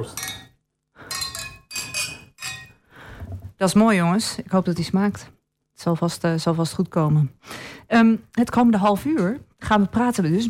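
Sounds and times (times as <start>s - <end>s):
speech: 0.0s - 0.3s, 3.6s - 10.4s
glasses clinking together in a toast: 0.0s - 2.8s.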